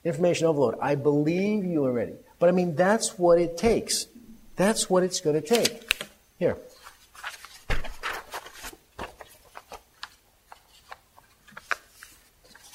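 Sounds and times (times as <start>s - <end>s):
speech: 0.0s - 6.7s
folded sheet of paper crinkling and rustling: 5.5s - 6.1s, 6.7s - 12.7s
folded sheet of paper crumpling: 6.8s - 12.7s.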